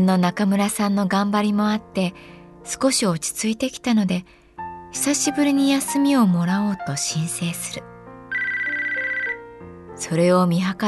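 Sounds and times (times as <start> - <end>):
speech: 0.0 - 7.9, 10.0 - 10.8
phone ringtone electronic melody: 8.3 - 9.5.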